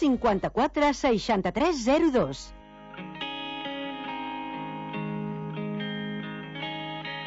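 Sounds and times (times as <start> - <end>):
speech: 0.0 - 3.1
song with effects-laden instrumental chords: 2.5 - 7.2.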